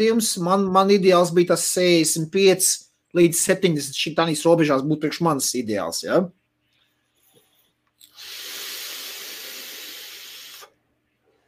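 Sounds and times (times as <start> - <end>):
speech: 0.0 - 6.4
hissing inhale through mesh RDA vape atomizer: 8.0 - 10.8.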